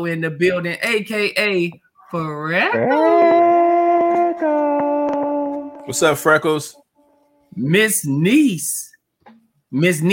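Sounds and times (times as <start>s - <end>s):
speech: 0.0s - 3.5s, 5.9s - 6.8s, 7.5s - 8.9s, 9.7s - 10.1s
dog howling: 2.6s - 5.9s.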